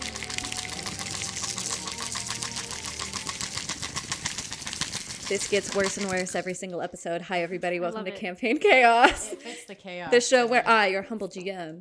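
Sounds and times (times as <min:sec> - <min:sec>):
tabletop role-playing game dice rattling and clattering: 0:00.4 - 0:06.4
speech: 0:05.3 - 0:11.7.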